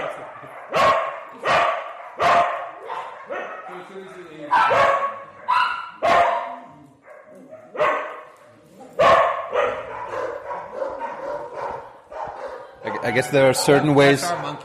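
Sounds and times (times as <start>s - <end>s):
dogs barking: 0.0s - 13.7s
speech: 13.1s - 14.6s.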